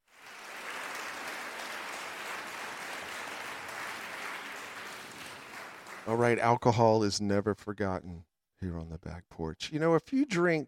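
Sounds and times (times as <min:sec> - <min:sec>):
crowd applause: 0:00.0 - 0:06.4
speech: 0:06.1 - 0:10.6.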